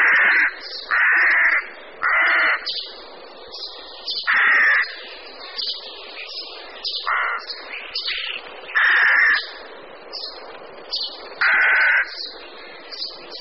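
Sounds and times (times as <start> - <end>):
Rook giving harsh, grating caws: 0.0 - 2.7, 4.3 - 5.0, 7.0 - 7.5, 8.8 - 9.6, 11.4 - 12.8.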